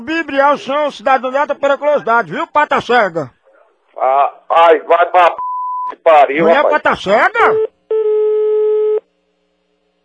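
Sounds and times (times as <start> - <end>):
speech: 0.0 - 3.4, 4.0 - 7.7
mobile phone busy signal after a dropped call: 7.5 - 9.0.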